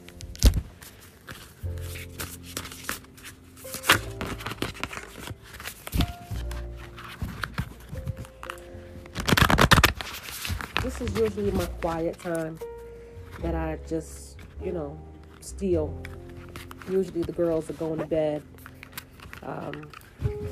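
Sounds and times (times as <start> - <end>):
deck of cards riffled and shuffled: 0.0 - 13.5, 15.2 - 20.4
soft steady music: 0.0 - 20.4
speech: 11.0 - 12.6, 13.4 - 16.1, 16.9 - 18.5, 19.4 - 20.3.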